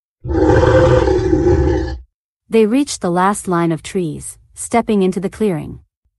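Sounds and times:
chorus of deep monster roars with growling voices: 0.2 - 2.1
speech: 2.5 - 5.8.

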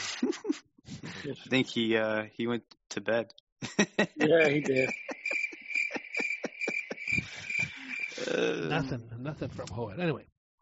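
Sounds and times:
laughter: 0.0 - 1.6, 3.6 - 8.9
speech: 0.2 - 0.6, 1.2 - 5.1, 8.2 - 10.6
crickets chirping sound effect: 4.2 - 8.8.

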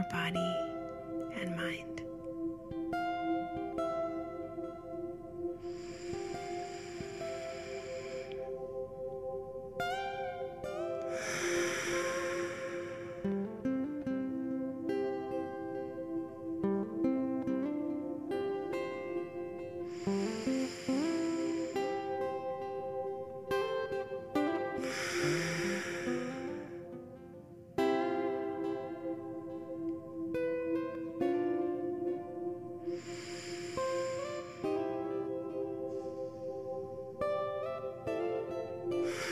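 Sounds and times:
gentle steady music: 0.0 - 39.3
speech: 0.1 - 0.8, 1.4 - 2.0
person breathing deeply during a relaxation exercise: 4.3 - 13.6, 19.7 - 27.2, 32.8 - 37.2, 39.0 - 39.3.

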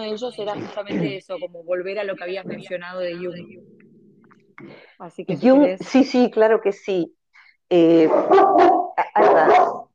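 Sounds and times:
speech: 0.0 - 3.8, 4.6 - 9.8
dog barking toward the door: 8.0 - 9.9.

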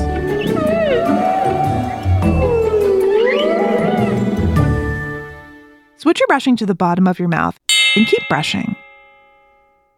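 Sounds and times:
humpback whale song moans: 0.0 - 4.7
speech: 6.3 - 8.8.

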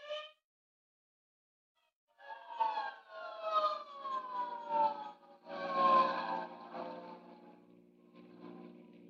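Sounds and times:
hook and ladder fire engine siren wailing on a city street: 2.2 - 7.8.

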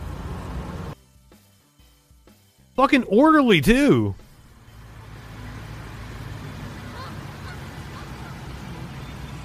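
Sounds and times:
loud rumble of outdoor street noise: 0.0 - 1.0, 2.8 - 9.4
speech: 2.8 - 4.2
gaggle of geese honking while walking across a street: 6.2 - 9.4.

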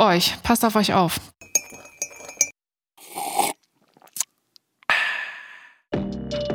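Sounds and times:
speech: 0.0 - 1.3
teacups clinking in a toast: 1.4 - 2.5
breathy sipping: 1.6 - 5.8.

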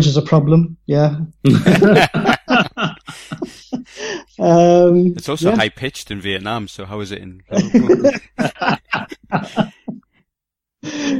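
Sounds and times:
speech: 0.0 - 2.8, 4.4 - 9.8
laughter: 1.5 - 4.1, 5.2 - 10.0
heavy coughing: 1.5 - 4.2, 7.5 - 10.0.

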